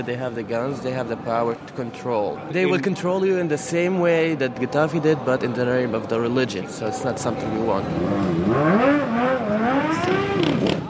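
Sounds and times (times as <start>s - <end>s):
speech: 0.0s - 10.2s
motorbike engines revving along a seafront for a crowd: 7.3s - 10.8s.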